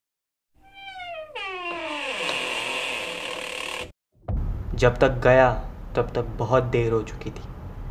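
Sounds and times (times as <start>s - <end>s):
door swinging open with a drawn-out creak: 0.6s - 3.9s
sharp knock: 4.2s - 5.9s
speech: 4.8s - 7.5s.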